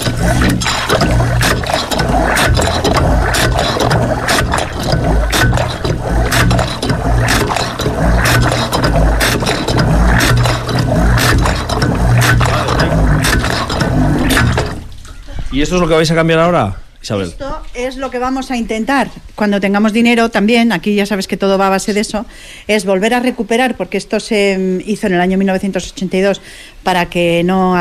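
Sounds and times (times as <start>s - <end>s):
water poured by hand onto an old hand water pump: 0.0s - 15.2s
metallic clanks and scrapes of an old hand water pump being primed: 0.0s - 15.4s
speech: 15.7s - 27.8s.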